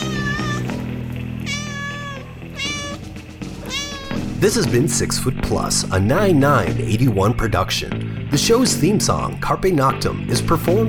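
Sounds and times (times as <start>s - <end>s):
cat meowing: 0.0s - 0.8s, 1.4s - 4.3s
speech: 4.4s - 10.8s.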